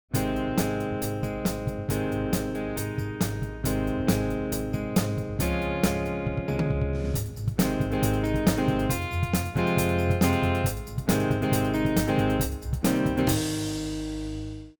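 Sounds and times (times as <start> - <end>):
classic rock music: 0.1 - 14.7.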